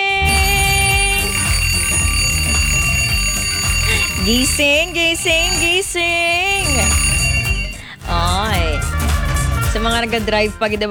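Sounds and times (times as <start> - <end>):
alarm clock ringing: 0.1 - 8.7
speech: 4.3 - 7.0, 9.7 - 10.8.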